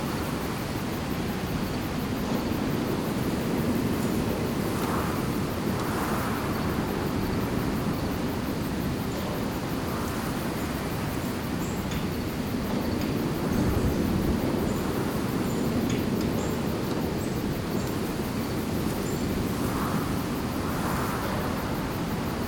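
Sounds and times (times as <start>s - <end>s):
base wind: 0.0s - 22.4s.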